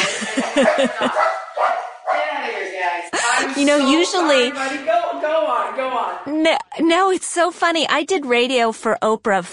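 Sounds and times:
laughter: 0.0 - 1.6, 3.0 - 5.0
dog barking: 0.4 - 2.5
speech: 0.6 - 1.4, 3.5 - 9.5.

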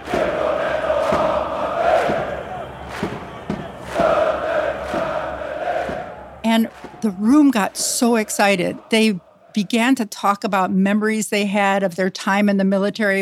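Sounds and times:
sharp rhythmic claps or stomps: 0.0 - 9.2
large crowd chanting in unison: 0.0 - 10.4
speech: 6.6 - 13.2.

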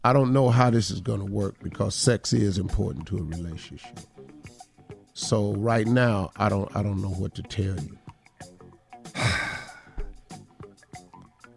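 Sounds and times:
speech: 0.0 - 4.2, 5.2 - 8.0
heavy breathing with drawn-out exhale and breathy puffs: 9.1 - 10.2.

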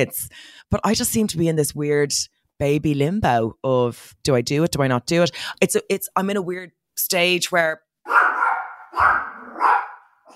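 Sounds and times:
speech: 0.0 - 8.2, 9.0 - 9.8
small dog of about seven pounds barking: 8.1 - 10.3.

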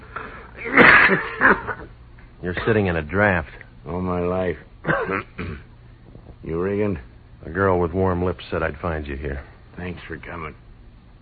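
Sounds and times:
speech: 0.6 - 1.8, 2.4 - 5.7, 6.4 - 10.6
thin man coughing into a bandana: 0.6 - 1.9, 4.8 - 5.7.

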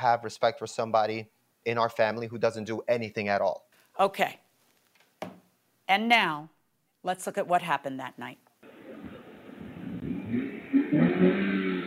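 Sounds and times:
speech: 0.0 - 4.4, 5.2 - 8.4
car engine revving and accelerating: 8.7 - 11.8.

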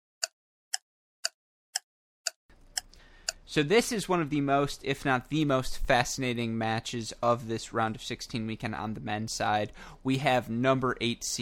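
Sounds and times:
clock ticking: 0.2 - 3.4
faint hiss: 2.5 - 11.3
speech: 3.5 - 11.3.

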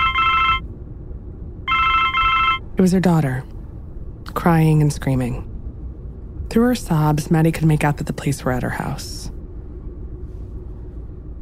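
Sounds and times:
bright warbling electronic mobile phone ringtone inside a car: 0.0 - 0.6, 1.7 - 2.6
steady low rumble inside a car: 0.0 - 11.4
speech: 2.8 - 3.6, 4.4 - 5.5, 6.5 - 9.3.

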